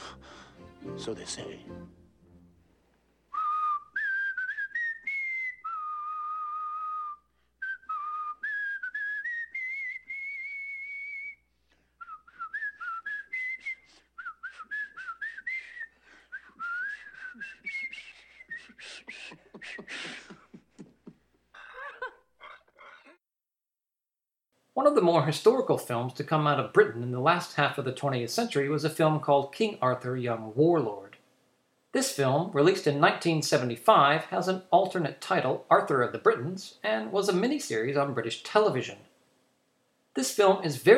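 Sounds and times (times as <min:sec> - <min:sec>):
speech: 0:01.0 - 0:02.0, 0:25.3 - 0:31.1, 0:31.9 - 0:39.0, 0:40.2 - 0:40.9
person whistling a lively tune: 0:03.3 - 0:19.9.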